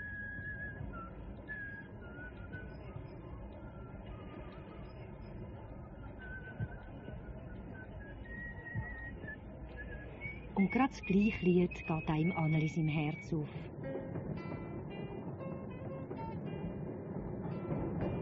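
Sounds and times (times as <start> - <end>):
person whistling a wandering tuneful melody: 0.0 - 5.4, 6.0 - 13.6
steady low noise: 0.0 - 18.2
speech: 10.6 - 13.8.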